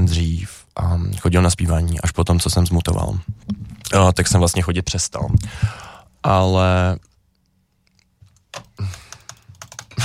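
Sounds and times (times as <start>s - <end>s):
speech: 0.8s - 7.1s
computer keyboard clicking: 8.2s - 10.0s.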